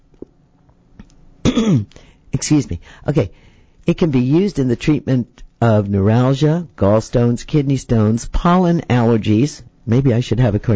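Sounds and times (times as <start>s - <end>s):
person clearing throat with a frog in the throat: 1.4s - 2.0s
speech: 1.7s - 10.7s.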